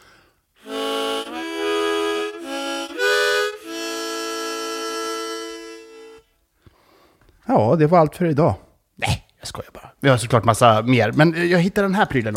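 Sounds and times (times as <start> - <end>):
harmonica playing loud reedy chords: 0.0 - 6.5
speech: 7.5 - 8.6, 9.5 - 12.3.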